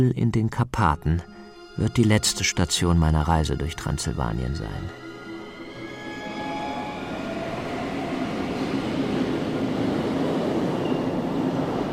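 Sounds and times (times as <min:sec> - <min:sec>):
speech: 0:00.0 - 0:05.0
faint metallic train squeals: 0:04.9 - 0:10.2
train rumbling on rails from Bucharest northward: 0:05.3 - 0:11.9.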